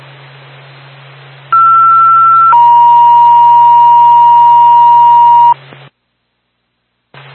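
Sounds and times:
low hum: 1.5s - 5.6s
two-tone emergency dispatch paging signal: 1.6s - 5.6s.

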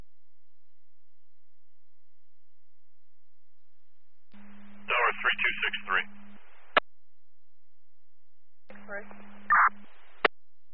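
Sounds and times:
low steady hum on a dispatch radio channel: 0.0s - 10.7s
garbled unreadable transmission on a dispatch radio channel: 4.9s - 6.8s, 8.8s - 10.0s
speech: 5.5s - 6.2s.

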